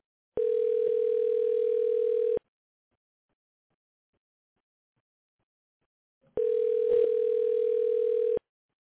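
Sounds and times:
telephone ringback tone of an unanswered call: 0.4 - 2.4, 6.4 - 8.4.

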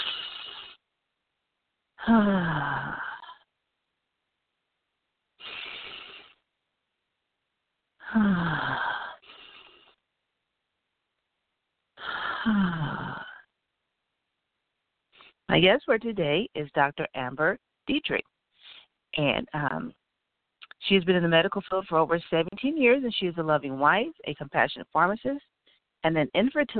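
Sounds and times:
deep centering breaths drawn and released: 0.0 - 0.8, 5.4 - 6.4, 8.0 - 10.0, 12.0 - 13.5, 18.5 - 19.0
soft sighing voice falling in pitch on exhales: 2.0 - 3.4
speech: 2.1 - 2.7, 15.6 - 18.3, 19.1 - 20.0, 20.8 - 26.7.

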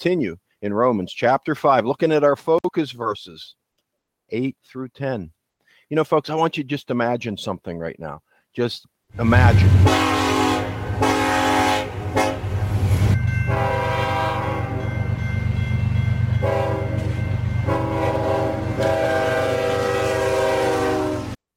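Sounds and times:
speech: 0.0 - 3.6, 4.3 - 10.3
heavy rumble of an approaching train: 9.3 - 21.4
train horn blaring: 9.5 - 12.8, 13.5 - 14.9, 16.4 - 21.4.

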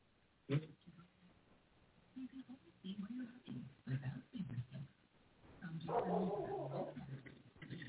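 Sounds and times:
people talking: 0.5 - 1.1, 2.2 - 5.0, 5.6 - 7.8
large dog barking: 5.9 - 7.0.

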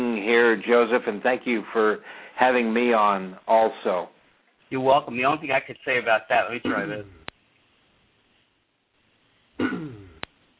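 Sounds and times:
speech: 0.3 - 7.2
person clearing throat: 6.6 - 7.3, 9.6 - 10.2.

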